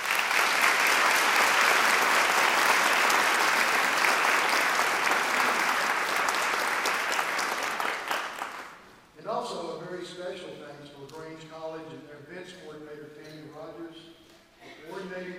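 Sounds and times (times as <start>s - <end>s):
sizable audience applauding: 0.0s - 8.9s.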